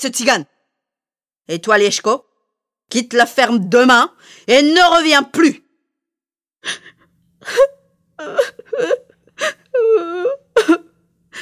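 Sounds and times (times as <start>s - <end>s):
speech: 0.0s - 0.6s, 1.5s - 2.3s, 2.9s - 5.6s, 6.6s - 10.8s
girl sobbing: 6.6s - 11.3s
girl wailing: 9.7s - 10.9s.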